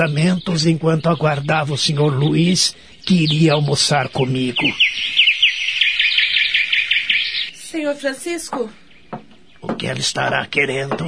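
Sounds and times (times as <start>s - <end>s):
speech: 0.0s - 5.2s, 7.7s - 8.8s, 9.6s - 11.0s
small birds chirping in a garden: 0.0s - 11.0s.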